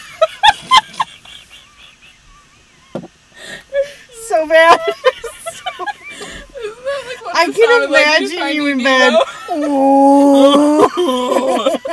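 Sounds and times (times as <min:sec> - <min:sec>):
laughter: 0:00.0 - 0:03.0, 0:04.6 - 0:11.9
speech: 0:04.4 - 0:05.1, 0:07.6 - 0:11.9
person imitating a whale call with a moaning tone: 0:09.7 - 0:11.2.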